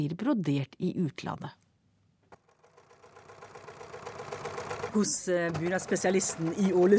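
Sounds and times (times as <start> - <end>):
speech: 0.0 - 1.6, 4.9 - 6.9
sewing machine running: 2.3 - 6.9.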